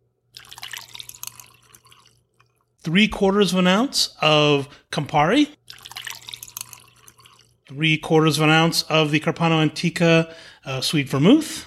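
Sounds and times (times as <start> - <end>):
rye whiskey poured into a mixing glass for a cocktail: 0.3 - 2.8, 5.6 - 7.7
speech: 2.8 - 5.6, 7.7 - 11.6.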